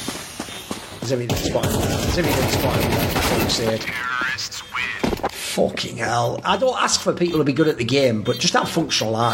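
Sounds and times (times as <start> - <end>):
speech: 1.1 - 4.9, 5.5 - 9.3
gunshots and rapid bursts in a video game shootout: 1.3 - 4.0.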